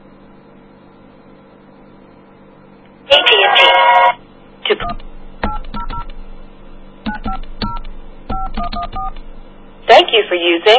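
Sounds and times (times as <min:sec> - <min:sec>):
low steady hum: 0:00.0 - 0:10.7
touch-tone keypad beeps dialing a toll-free telephone number: 0:07.1 - 0:09.2
speech: 0:10.1 - 0:10.7.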